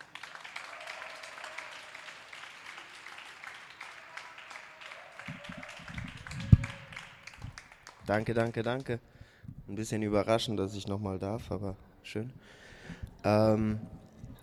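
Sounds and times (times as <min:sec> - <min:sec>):
audience applause at a university poetry slam: 0:00.0 - 0:09.0
speech: 0:08.1 - 0:09.1, 0:09.7 - 0:12.6, 0:13.2 - 0:14.0.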